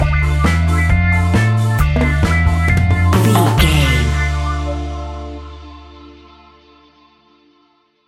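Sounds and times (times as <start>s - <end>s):
reggae ska fusion music cue stinger with skank bounce: 0.0s - 6.2s.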